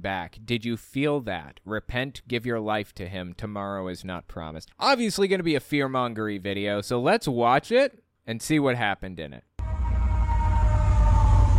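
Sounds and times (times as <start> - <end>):
speech: 0.0 - 9.5
heavy low rumble: 9.6 - 11.5
siren wailing: 9.6 - 11.5.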